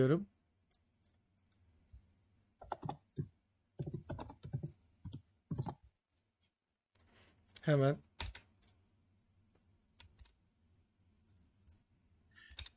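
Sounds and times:
speech: 0.0 - 0.3, 7.7 - 8.1
typing a message on a keyboard: 2.6 - 5.8, 8.2 - 8.5, 12.4 - 12.7.

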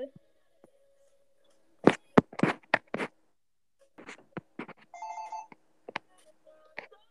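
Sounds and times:
phone ringtone of sharp electronic hits and melodic chime: 4.9 - 5.6.

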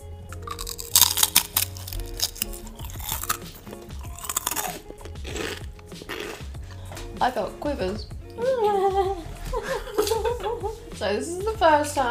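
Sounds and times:
person chewing crisp food: 0.2 - 7.0
speech: 7.2 - 9.3, 11.0 - 12.0
laughter: 8.4 - 10.8.

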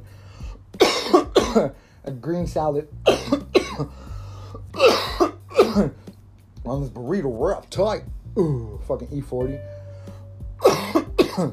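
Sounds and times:
low steady hum: 0.0 - 11.5
person coughing: 0.8 - 1.8, 3.1 - 3.9, 4.8 - 6.0, 10.6 - 11.5
speech: 1.5 - 4.1, 5.6 - 6.0, 6.6 - 9.8, 11.4 - 11.5.

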